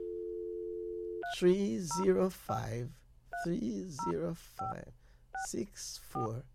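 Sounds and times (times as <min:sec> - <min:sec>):
steady telephone dial tone: 0:00.0 - 0:01.3
man speaking as he keys in the digits: 0:01.3 - 0:06.5.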